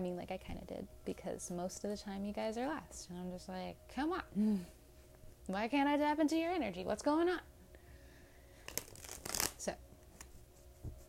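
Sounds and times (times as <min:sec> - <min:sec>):
speech: 0:00.0 - 0:04.8, 0:05.5 - 0:07.5, 0:09.6 - 0:09.8
tarot card deck being shuffled: 0:08.6 - 0:10.4.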